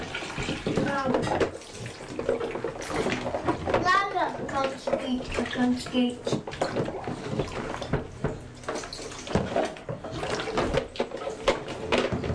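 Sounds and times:
water sloshing and splashing in a bathtub: 0:00.0 - 0:12.3
speech: 0:05.0 - 0:06.4.

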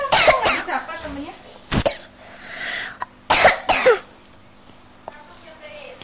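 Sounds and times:
person coughing harshly: 0:00.1 - 0:00.7, 0:03.3 - 0:04.1.

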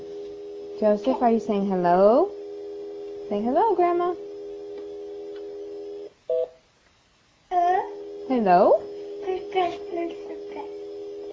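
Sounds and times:
telephone steady electronic tone: 0:00.0 - 0:01.4, 0:02.3 - 0:06.1, 0:07.9 - 0:11.3
speech: 0:00.8 - 0:02.4, 0:03.3 - 0:04.2, 0:08.3 - 0:08.8.

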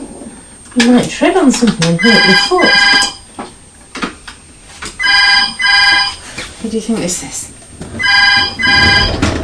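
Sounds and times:
speech: 0:00.8 - 0:03.2, 0:06.8 - 0:07.6
old-style telephone bell trilling double ring: 0:02.0 - 0:03.3, 0:05.0 - 0:06.3, 0:08.0 - 0:09.3.

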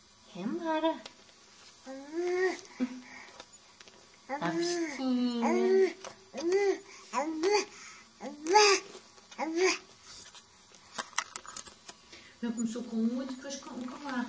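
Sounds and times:
speech: 0:00.4 - 0:01.2, 0:01.8 - 0:03.0, 0:04.3 - 0:09.8, 0:12.4 - 0:14.2
baby babbling: 0:04.3 - 0:09.8.

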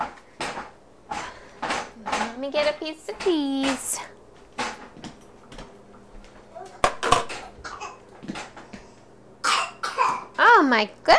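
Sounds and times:
faint hum: 0:00.0 - 0:11.1
speech: 0:02.4 - 0:04.2, 0:10.7 - 0:11.1
young child coughing in short harsh bursts: 0:07.4 - 0:08.0, 0:09.4 - 0:10.4.

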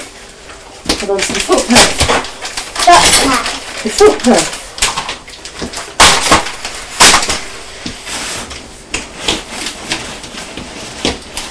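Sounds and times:
packets of wipes thrown into a box: 0:00.9 - 0:08.0
speech: 0:01.0 - 0:04.6.

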